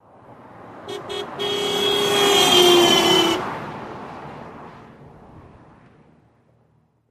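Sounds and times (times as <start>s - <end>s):
car horns passing by with doppler effect: 0.8s - 3.6s.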